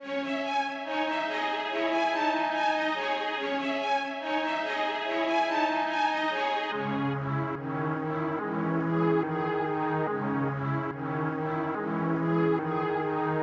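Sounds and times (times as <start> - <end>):
strings playing in C sharp minor: 0.0 - 13.4.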